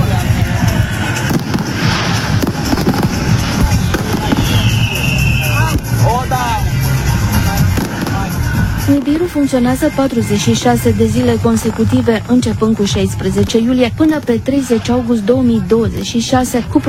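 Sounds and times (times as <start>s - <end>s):
fireworks crackling and popping: 0.0s - 14.9s
crowd murmuring: 0.0s - 16.8s
whistling rockets rising: 0.5s - 6.2s, 7.3s - 9.2s
speech: 8.9s - 16.8s.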